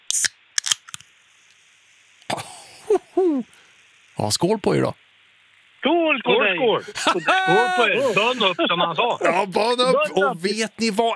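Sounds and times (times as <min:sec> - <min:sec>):
drink can opening: 0:00.0 - 0:01.1
laughter: 0:02.3 - 0:03.5, 0:06.7 - 0:11.1
speech: 0:03.2 - 0:05.0, 0:05.8 - 0:11.1.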